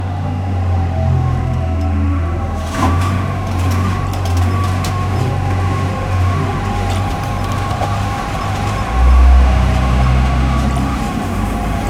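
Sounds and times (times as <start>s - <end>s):
truck driving: 0.0s - 11.8s.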